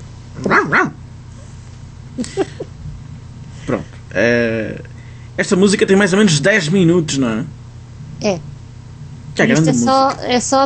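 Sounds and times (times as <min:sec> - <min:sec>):
dog barking: 0:00.4 - 0:01.0
speech: 0:00.7 - 0:01.0, 0:02.2 - 0:02.8, 0:03.7 - 0:07.6, 0:08.2 - 0:08.5, 0:09.4 - 0:10.6.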